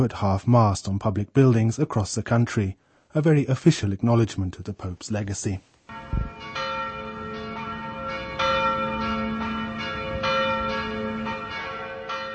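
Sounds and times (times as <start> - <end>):
speech: 0.0 - 6.4
several church bells pealing in the Czech Republic in honour of the late Pope: 5.9 - 12.3.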